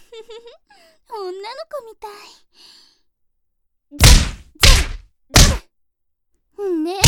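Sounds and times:
speech: 0.1s - 2.8s, 3.9s - 5.0s, 6.6s - 7.0s
heavy punches hitting a face: 4.0s - 5.7s.

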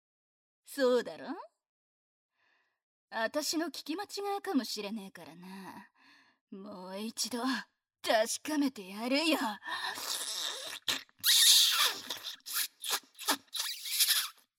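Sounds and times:
speech: 0.7s - 1.5s, 3.1s - 5.9s, 6.5s - 10.5s
high-pitched voice letting out piercing shrieks and squeals: 10.5s - 14.3s.

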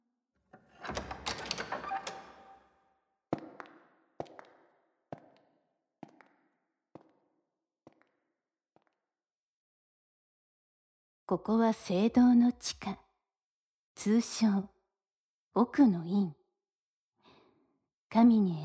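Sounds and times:
heavy door grinding and creaking open: 0.6s - 2.7s
speech: 11.3s - 13.0s, 14.0s - 14.7s, 15.6s - 16.4s, 18.1s - 18.6s.

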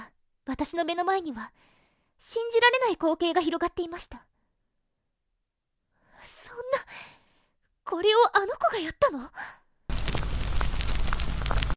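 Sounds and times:
speech: 0.5s - 4.3s, 7.9s - 9.6s
explosion of a heat ray fired from a young monster's horns: 9.9s - 11.7s.

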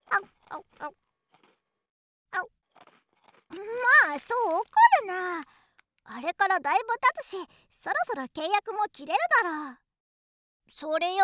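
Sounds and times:
faint chewing: 0.0s - 1.8s, 2.4s - 6.0s
snaggle fangs biting into a hard-baked rice cracker: 0.3s - 1.8s, 2.6s - 6.0s
speech: 4.2s - 9.8s, 10.7s - 11.2s.

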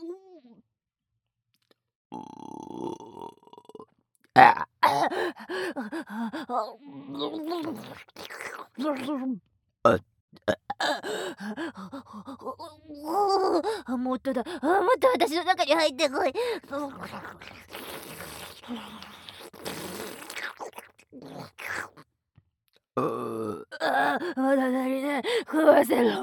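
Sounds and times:
speech: 2.1s - 3.1s, 4.4s - 8.2s, 8.8s - 10.1s, 10.9s - 17.7s, 18.7s - 19.0s, 25.5s - 26.2s
long rough burp: 2.1s - 5.2s, 9.9s - 11.0s, 23.0s - 24.0s
person talking with breathy gasps: 5.0s - 7.4s, 10.9s - 19.5s, 24.0s - 26.2s.

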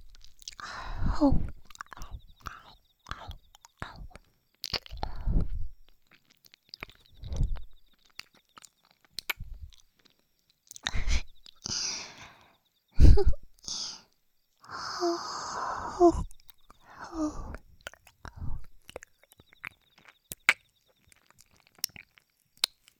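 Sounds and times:
faint whispering: 0.0s - 5.7s, 10.8s - 18.8s
soft chewing and biting with wet crunches: 0.1s - 0.7s, 1.6s - 11.7s, 17.8s - 22.9s.

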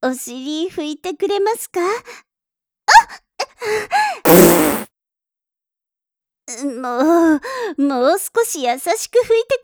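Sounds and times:
speech: 0.0s - 2.3s, 2.9s - 4.8s, 6.5s - 9.6s
short squeaky farts: 4.3s - 4.9s.

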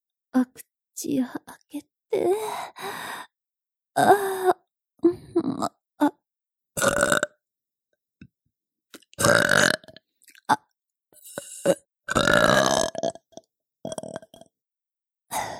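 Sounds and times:
speech: 0.4s - 3.3s, 4.0s - 6.2s
person burping after drinking milk: 6.8s - 7.4s, 9.2s - 10.7s, 11.3s - 13.3s, 13.9s - 14.4s.

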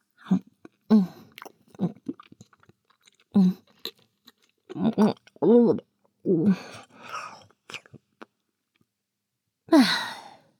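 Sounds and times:
person chewing and eating food: 0.2s - 5.5s, 6.6s - 8.9s
speech: 0.3s - 1.2s.

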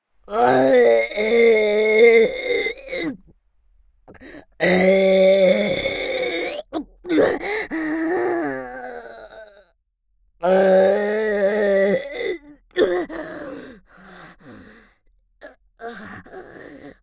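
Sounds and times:
long loud voiced burps with a rough groaning tone: 0.3s - 3.2s, 4.1s - 9.6s, 10.4s - 13.1s.

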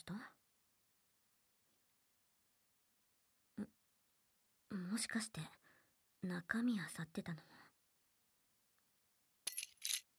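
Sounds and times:
speech: 0.0s - 0.4s, 4.8s - 5.6s, 6.2s - 7.6s
bunch of keys dropping on a hard floor: 9.5s - 10.1s.

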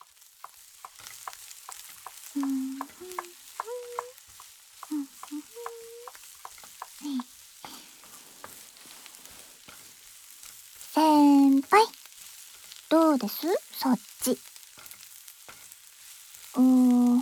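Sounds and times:
scraping clicks of stirring onions in a pot: 0.0s - 11.0s, 11.6s - 16.5s
onions sizzling as they are stir-fried in a hot pot: 0.0s - 17.1s
speech: 2.4s - 2.7s, 13.2s - 14.5s.

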